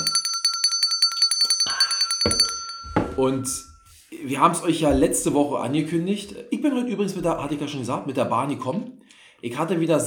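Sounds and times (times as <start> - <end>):
bell rung rapidly with a jangling tone: 0.0 - 4.0
dull knocks: 2.2 - 4.0, 4.8 - 5.5
speech: 3.2 - 10.0.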